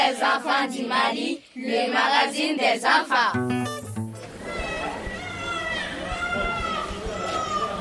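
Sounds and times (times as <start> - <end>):
speech: 0.2 - 3.6
several babies crying in a hospital neonatal care department in Mali: 4.5 - 7.7.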